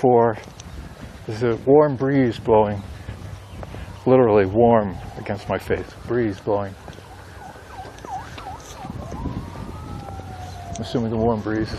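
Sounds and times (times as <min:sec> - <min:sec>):
speech: 0:00.0 - 0:00.6, 0:01.3 - 0:03.0, 0:04.0 - 0:06.9, 0:10.8 - 0:11.7
warbling emergency vehicle siren: 0:03.8 - 0:11.7.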